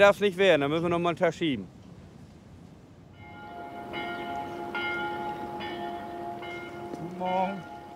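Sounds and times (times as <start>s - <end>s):
speech: 0.0s - 1.8s, 7.2s - 7.7s
church bell striking the hour: 3.2s - 7.9s.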